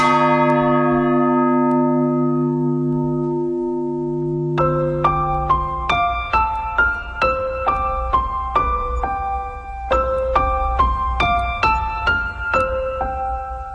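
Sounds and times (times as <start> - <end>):
rapid sequence of brighter bell strikes: 0.0 - 7.8
old bell tolling with a long deep humming decay: 0.0 - 13.5.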